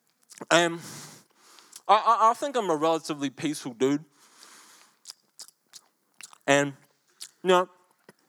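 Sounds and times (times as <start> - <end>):
speech: 0.4 - 1.0, 1.9 - 4.1, 6.5 - 6.8, 7.4 - 7.8
voice imitating loud chewing of a man eating a meal: 5.0 - 7.7.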